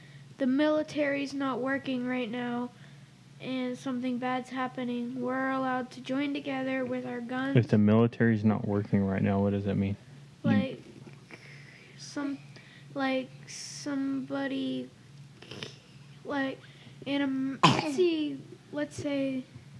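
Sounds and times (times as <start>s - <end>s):
speech: 0.4s - 2.8s, 3.4s - 10.8s, 12.2s - 12.4s, 13.0s - 15.7s, 16.3s - 19.5s
child coughing and clearing throat: 10.5s - 11.5s, 17.4s - 18.4s.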